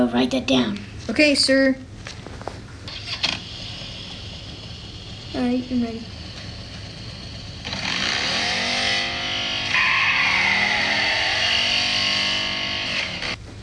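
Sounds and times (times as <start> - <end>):
speech: 0.0 - 1.9, 5.4 - 6.2
motorcycle engine roaring past: 6.2 - 13.4.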